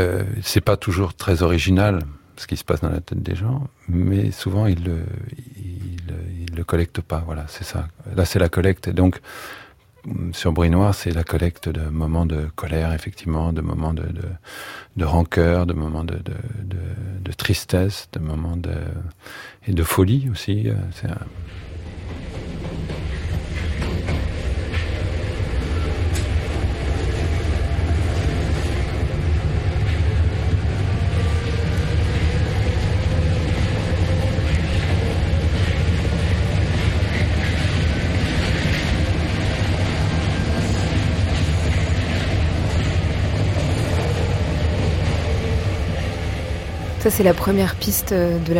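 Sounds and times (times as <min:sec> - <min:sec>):
speech: 0:00.0 - 0:05.5, 0:06.1 - 0:22.2, 0:47.1 - 0:48.5
moving metro car rumble: 0:00.0 - 0:17.7, 0:19.8 - 0:48.5
hissing metro train wheel noise: 0:21.3 - 0:48.1.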